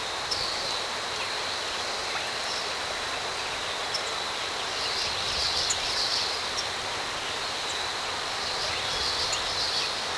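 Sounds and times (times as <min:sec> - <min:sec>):
swamp ambience: 0:00.0 - 0:10.1.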